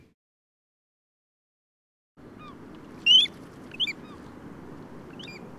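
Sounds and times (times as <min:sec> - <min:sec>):
squeaky bird calls while taking off and flying away: 0:02.4 - 0:04.2, 0:05.1 - 0:05.4.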